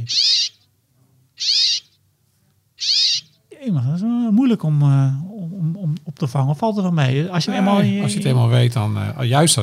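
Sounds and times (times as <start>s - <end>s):
brambling giving harsh nasal calls: 0.0s - 0.7s, 1.4s - 2.0s, 2.8s - 3.4s
speech: 0.1s - 0.4s, 3.6s - 9.6s.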